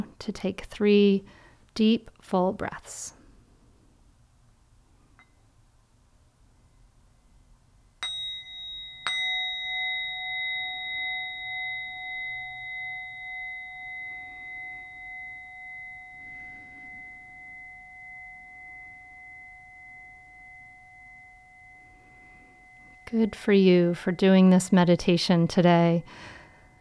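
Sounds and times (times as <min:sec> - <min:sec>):
speech: 0:00.0 - 0:03.2, 0:23.1 - 0:26.4
meditation bell struck and ringing: 0:08.0 - 0:26.7.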